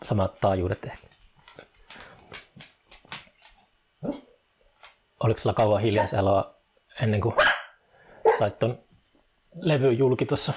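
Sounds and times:
speech: 0:00.0 - 0:01.7, 0:05.2 - 0:07.5, 0:08.4 - 0:08.8, 0:09.5 - 0:10.5
dog barking: 0:04.0 - 0:04.3, 0:07.4 - 0:08.6.

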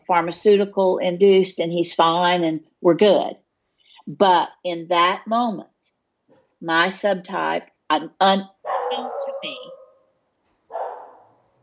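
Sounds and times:
speech: 0:00.1 - 0:03.4, 0:04.0 - 0:05.7, 0:06.6 - 0:09.7
dog barking: 0:08.6 - 0:10.1, 0:10.7 - 0:11.6.

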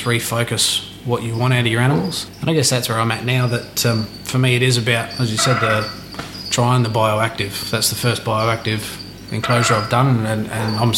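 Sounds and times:
speech: 0:00.0 - 0:10.9
male frog calling with a continuous trilling chirp: 0:00.8 - 0:06.8, 0:08.4 - 0:10.9.

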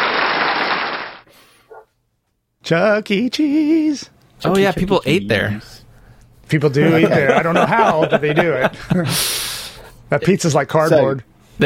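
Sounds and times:
dense applause for a correct quiz answer: 0:00.0 - 0:01.2
speech: 0:02.7 - 0:05.8, 0:06.5 - 0:09.4, 0:10.1 - 0:11.6
laughter: 0:06.8 - 0:09.2.

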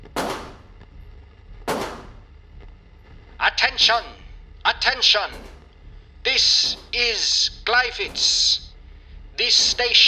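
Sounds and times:
pistol shots fired into the air: 0:00.0 - 0:01.0, 0:01.7 - 0:02.4, 0:04.8 - 0:08.8, 0:09.4 - 0:10.0
speech: 0:03.4 - 0:05.6, 0:06.2 - 0:08.6, 0:09.4 - 0:10.0.

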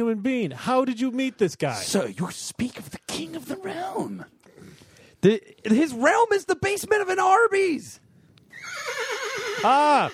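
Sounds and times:
speech: 0:00.0 - 0:04.4, 0:05.2 - 0:08.0, 0:08.8 - 0:10.1
horse whinnying: 0:08.4 - 0:10.1.

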